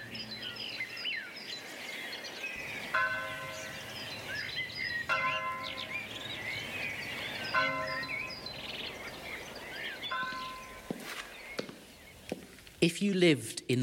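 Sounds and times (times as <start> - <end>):
birds chirping: 0.0 - 13.3
church bells ringing: 2.6 - 11.1
faint ambient bustle: 2.6 - 12.2
speech: 12.8 - 13.8.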